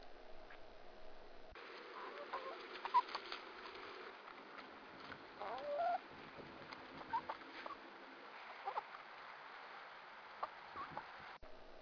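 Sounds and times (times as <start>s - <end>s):
chickens pecking and scratching while feeding: 1.6s - 11.2s
chickens clucking faintly: 1.7s - 4.2s, 5.0s - 9.1s, 10.4s - 11.4s.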